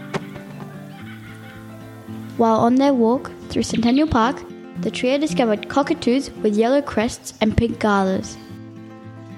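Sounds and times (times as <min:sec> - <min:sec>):
kookaburra laughing call: 0:00.2 - 0:02.2
speech: 0:02.4 - 0:08.4.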